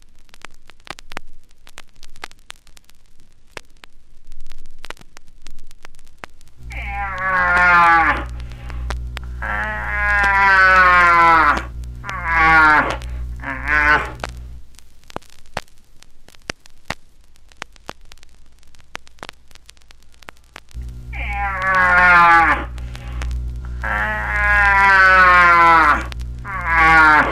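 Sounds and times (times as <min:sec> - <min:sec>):
moose calls, drawn-out nasal moans: 0:06.7 - 0:14.2, 0:21.1 - 0:27.2.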